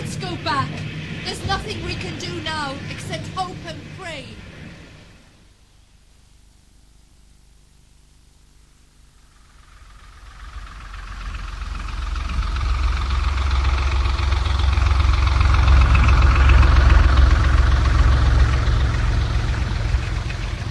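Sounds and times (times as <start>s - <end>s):
motor launch engine running on a rough sea: 0.0s - 5.1s, 9.3s - 20.7s
speech: 0.4s - 4.5s.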